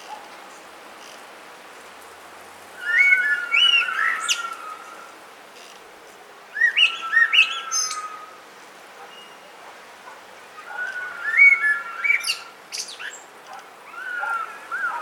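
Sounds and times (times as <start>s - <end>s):
common blackbird Turdus merula singing fluted notes: 2.8s - 5.0s, 6.5s - 8.3s, 9.1s - 9.6s, 10.4s - 15.0s.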